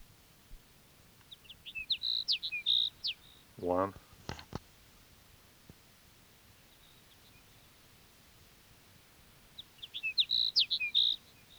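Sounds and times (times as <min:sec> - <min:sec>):
soft hiss: 0:00.0 - 0:11.5
Sage Sparrow singing: 0:01.2 - 0:03.9, 0:09.5 - 0:11.5
speech: 0:03.6 - 0:04.0.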